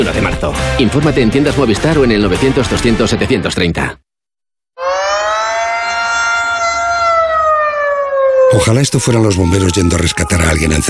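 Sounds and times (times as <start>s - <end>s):
speech: 0.0s - 4.0s, 8.5s - 10.8s
air raid warning siren in Ukraine wailing: 4.8s - 10.8s.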